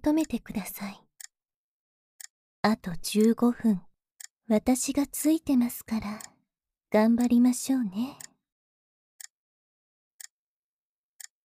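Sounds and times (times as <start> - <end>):
speech: 0.0 - 1.0, 2.6 - 3.9, 4.5 - 6.3, 6.9 - 8.3
clock ticking: 0.0 - 1.3, 2.2 - 6.4, 7.0 - 8.4.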